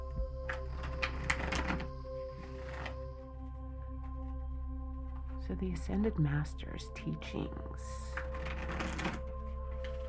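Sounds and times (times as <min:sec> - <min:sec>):
steady low hum: 0:00.0 - 0:10.0
deck of cards being shuffled for a divination reading: 0:00.5 - 0:03.0, 0:08.1 - 0:09.2
speech: 0:05.5 - 0:08.3.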